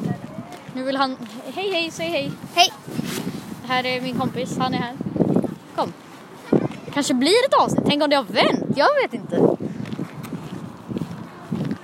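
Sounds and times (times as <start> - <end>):
gusty wind buffeting an outdoor microphone: 0.0 - 11.8
speech: 0.8 - 5.0, 5.8 - 6.0, 7.0 - 9.5.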